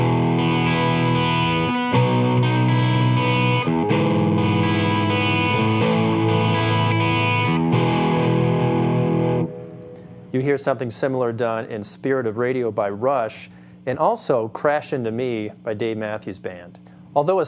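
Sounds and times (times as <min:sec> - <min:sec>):
distorted electric guitar playing bar chords in E with open strings: 0:00.0 - 0:10.3
speech: 0:10.4 - 0:17.4.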